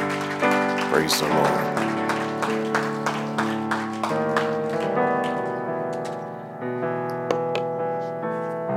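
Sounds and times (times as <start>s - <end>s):
audience clapping along: 0.0s - 6.2s
sustained organ-like music: 0.0s - 8.6s
speech: 1.0s - 1.9s.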